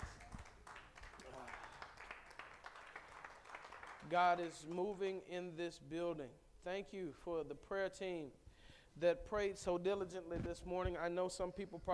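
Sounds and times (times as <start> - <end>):
church audience clapping: 0.0 - 4.9
speech: 4.0 - 8.4, 9.0 - 11.9.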